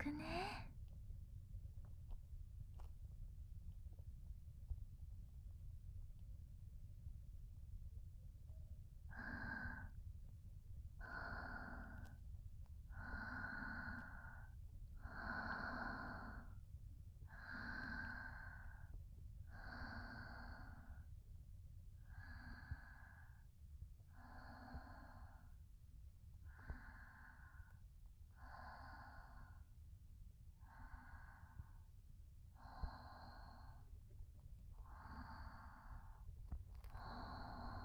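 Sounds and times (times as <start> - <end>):
mother's slow steady breathing: 0.0 - 0.6, 8.5 - 10.3, 10.9 - 37.8
low constant hum: 0.0 - 37.8.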